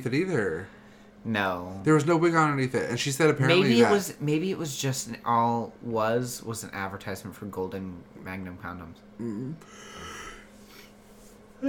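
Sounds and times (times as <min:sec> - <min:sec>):
speech: 0:00.0 - 0:10.2
person yawning: 0:09.2 - 0:10.5.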